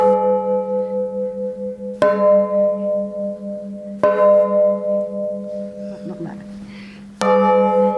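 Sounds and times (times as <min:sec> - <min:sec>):
large church bells struck one after another: 0:00.0 - 0:07.9.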